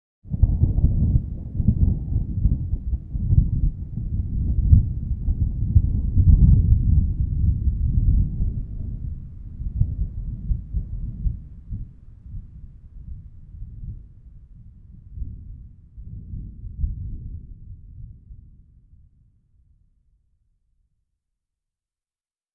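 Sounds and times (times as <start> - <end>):
distant thunder: 0.4 - 14.2.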